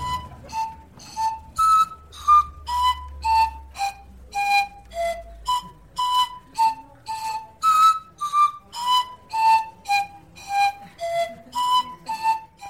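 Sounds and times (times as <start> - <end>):
short bright whistle-like melody: 0.0 - 12.6.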